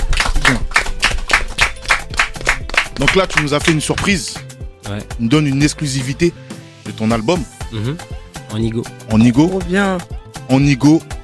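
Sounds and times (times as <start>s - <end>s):
rhythmic clapping at a live show: 0.0s - 5.1s
speech: 3.0s - 11.1s.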